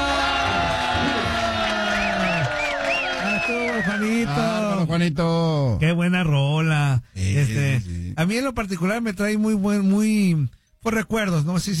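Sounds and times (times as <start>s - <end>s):
crowd clapping: 0.0s - 4.8s
crowd whistling: 1.9s - 4.2s
speech: 4.2s - 11.7s.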